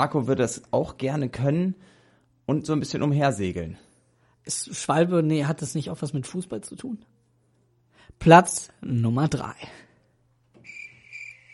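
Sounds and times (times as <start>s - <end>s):
speech: 0.0s - 7.2s, 8.1s - 9.9s
cricket chirping in high-pitched trills: 10.6s - 11.5s.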